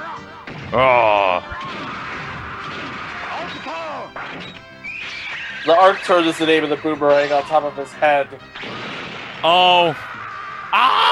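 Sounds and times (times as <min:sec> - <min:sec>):
bombs exploding in a video game: 0:00.4 - 0:05.7, 0:08.5 - 0:10.4
speech: 0:00.7 - 0:01.9, 0:05.6 - 0:08.8, 0:09.4 - 0:10.1, 0:10.7 - 0:11.0.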